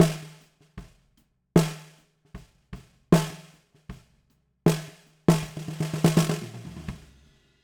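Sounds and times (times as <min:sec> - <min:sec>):
snare drum: 0:00.0 - 0:01.0, 0:01.6 - 0:02.0, 0:02.8 - 0:04.1, 0:04.7 - 0:07.6.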